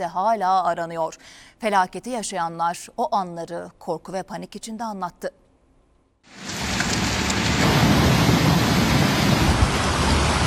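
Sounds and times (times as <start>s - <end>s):
speech: 0.0s - 5.4s
floodwater rushing past a house at night during heavy rain: 6.3s - 10.4s.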